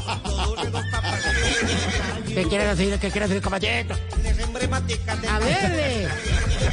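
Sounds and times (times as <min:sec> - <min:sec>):
laughter: 0:00.0 - 0:02.2, 0:05.6 - 0:06.7
horse neighing: 0:00.6 - 0:02.4, 0:06.0 - 0:06.7
speech: 0:02.4 - 0:06.7.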